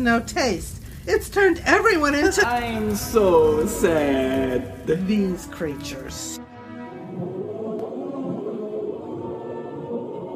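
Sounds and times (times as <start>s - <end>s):
speech: 0.0s - 6.5s
discordant chorus of creatures singing: 2.3s - 10.3s.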